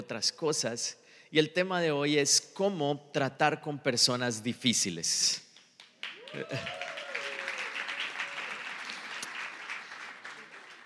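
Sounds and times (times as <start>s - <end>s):
speech: 0.0s - 5.4s, 6.3s - 6.8s
audience applauding: 5.8s - 10.8s
laughter: 6.3s - 7.0s.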